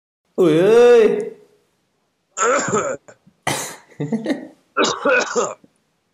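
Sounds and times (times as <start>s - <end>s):
speech: 0.4s - 1.3s, 4.0s - 4.4s
person coughing: 2.4s - 3.9s, 4.8s - 5.6s
throat clearing: 2.4s - 3.9s, 4.8s - 5.6s.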